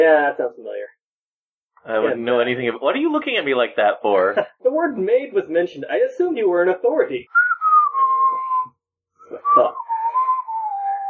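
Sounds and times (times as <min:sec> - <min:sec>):
speech: 0:00.0 - 0:01.0, 0:01.8 - 0:07.4, 0:09.3 - 0:09.9
person whistling innocently: 0:07.3 - 0:11.0.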